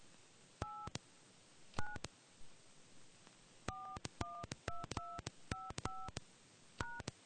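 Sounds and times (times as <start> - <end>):
telephone keypad DTMF tones: 0.6 - 0.9, 3.7 - 6.2, 6.8 - 7.1.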